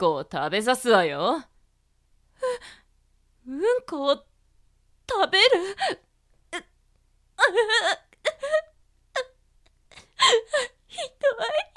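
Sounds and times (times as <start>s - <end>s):
speech: 0.0s - 1.5s, 3.4s - 4.3s, 5.1s - 6.7s, 7.4s - 8.7s, 10.2s - 11.7s
woman sobbing with her face in her hands: 5.3s - 6.7s, 7.4s - 11.7s.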